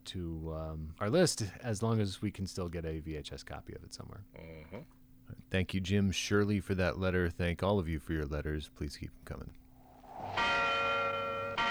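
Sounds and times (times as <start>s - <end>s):
speech: 0.1s - 9.6s
church bell ringing over a silent deserted village: 10.3s - 11.6s.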